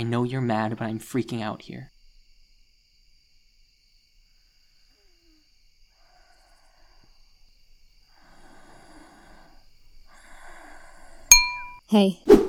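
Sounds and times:
speech: 0.0s - 1.9s, 11.9s - 12.4s
slow heavy breaths heard from outside a door: 4.3s - 11.3s.

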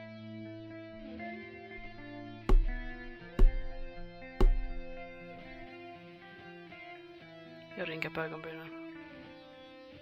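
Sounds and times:
snowy owl pecking on a windowsill: 1.8s - 5.7s
speech: 7.8s - 8.8s.

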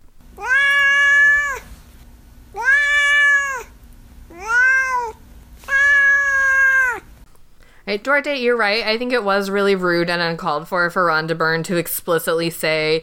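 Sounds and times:
cat meowing long and drawn-out: 0.4s - 1.7s, 2.5s - 3.7s, 4.3s - 7.1s
speech: 7.9s - 13.0s.

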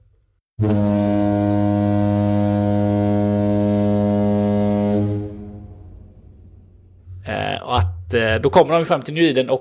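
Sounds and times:
speech: 0.6s - 0.9s, 8.1s - 9.5s
single loud sustained deep horn blast: 0.6s - 7.4s.

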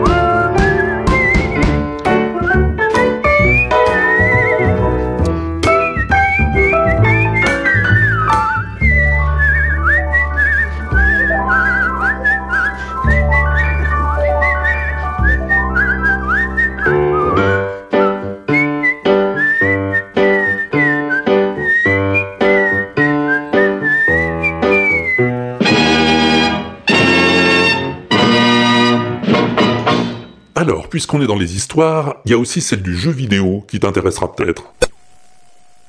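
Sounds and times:
bright whistled melody with slight vibrato: 0.0s - 27.7s
steady instrumental backing music: 0.0s - 30.6s
speech: 31.0s - 34.8s.

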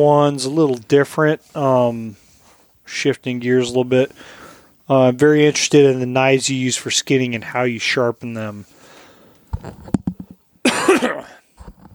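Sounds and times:
speech: 0.0s - 2.2s, 2.9s - 8.8s, 9.6s - 10.0s, 10.9s - 11.4s
short hoarse coughs and harsh hacking cough: 10.6s - 11.4s.

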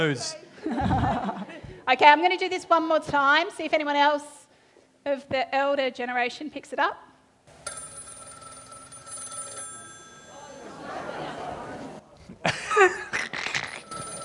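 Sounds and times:
speech: 0.0s - 4.4s, 5.0s - 7.1s
laughter: 0.6s - 1.7s, 10.3s - 14.0s
telephone bell ringing: 7.6s - 11.3s, 13.6s - 14.2s.

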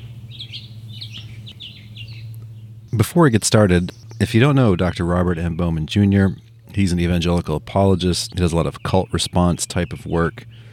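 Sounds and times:
birds chirping outside a house: 0.0s - 10.7s
steady low outdoor hum outside a house: 0.0s - 10.7s
speech: 3.0s - 10.7s.

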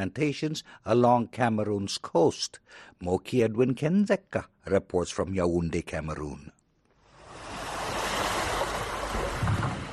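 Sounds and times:
speech: 0.0s - 6.6s
ocean waves crashing and pounding walls and houses: 7.0s - 9.9s.

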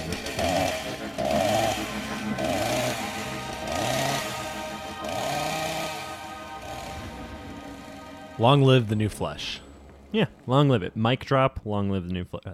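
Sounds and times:
chainsaw sound effect revving in buzzing bursts: 0.0s - 8.4s
speech: 8.4s - 12.5s.

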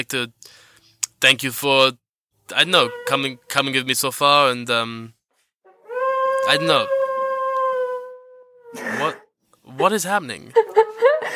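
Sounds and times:
speech: 0.1s - 5.2s, 6.4s - 7.0s, 8.7s - 10.8s
dog giving a long sustained howl: 5.7s - 8.8s
laughter: 10.5s - 11.3s.

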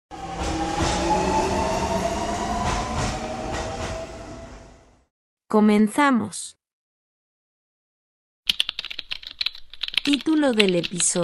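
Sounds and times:
urban train rumbling on rails at a station: 0.1s - 5.1s
speech: 5.5s - 6.6s, 10.0s - 11.2s.

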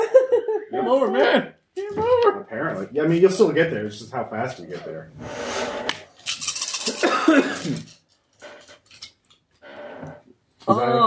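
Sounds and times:
laughter: 0.0s - 1.4s
speech: 0.7s - 6.0s, 7.3s - 8.0s, 10.6s - 11.0s
dice rattling and clattering across a hard surface: 6.0s - 8.1s.

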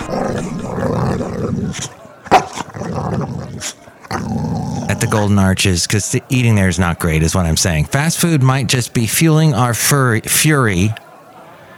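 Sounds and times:
dog barking and growling: 0.0s - 5.3s
speech: 5.1s - 11.0s.

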